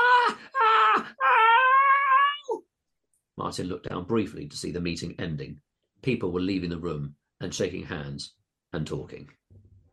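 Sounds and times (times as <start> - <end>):
man screaming in pain: 0.0 - 2.6
speech: 3.5 - 9.4.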